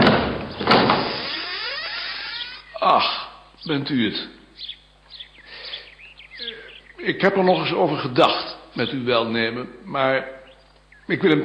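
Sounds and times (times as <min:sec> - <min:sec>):
door being opened: 0:00.0 - 0:02.8
speech: 0:02.8 - 0:04.7, 0:07.0 - 0:10.4, 0:11.1 - 0:11.4.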